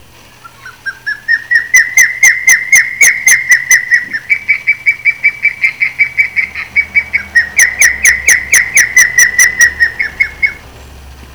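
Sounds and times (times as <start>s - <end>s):
osprey calling: 0.0s - 11.3s.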